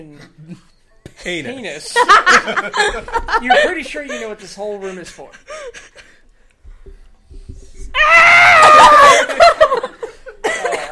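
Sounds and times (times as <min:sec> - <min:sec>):
speech: 0:00.0 - 0:05.8
laughter: 0:01.8 - 0:06.2, 0:08.7 - 0:10.8
loud high-pitched human scream: 0:08.0 - 0:09.5.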